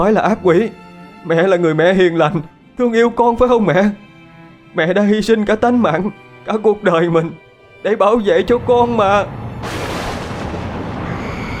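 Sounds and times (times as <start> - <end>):
speech: 0.0 - 4.0, 4.7 - 9.8
howling gale during a storm: 8.3 - 11.5
thunder crashing during a storm: 8.8 - 11.5.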